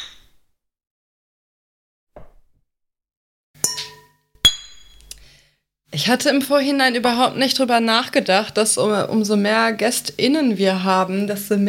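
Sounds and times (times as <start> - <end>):
glasses clinking in a toast: 3.6 - 5.2
speech: 6.0 - 11.6.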